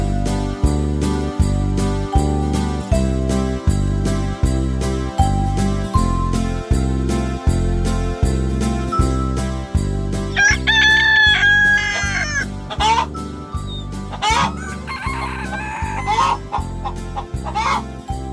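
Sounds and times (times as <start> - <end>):
upbeat music with pulsing beat: 0.0 - 18.3
rooster crowing: 10.4 - 12.5, 14.2 - 16.5.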